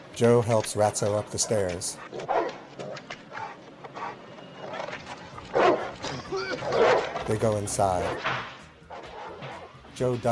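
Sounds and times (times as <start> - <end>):
speech: 0.2 - 3.0, 6.3 - 8.5, 10.0 - 10.3
chained dog barking at night in light snow: 1.3 - 4.2, 5.5 - 7.2, 8.1 - 9.7.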